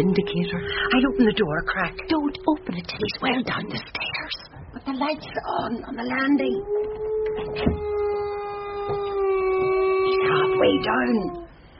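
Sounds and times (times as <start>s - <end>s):
dog howling: 0.0s - 3.4s, 6.4s - 11.6s
speech: 0.0s - 4.2s, 4.8s - 8.0s, 10.2s - 11.4s.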